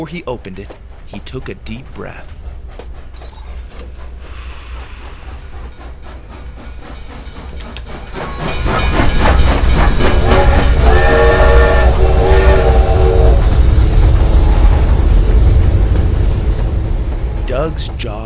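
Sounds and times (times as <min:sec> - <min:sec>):
speech: 0:00.0 - 0:02.4, 0:17.8 - 0:18.2
arriving train steam hissing and rumbling: 0:00.0 - 0:18.2
chord-like train horn blaring: 0:10.0 - 0:15.8, 0:17.1 - 0:17.9.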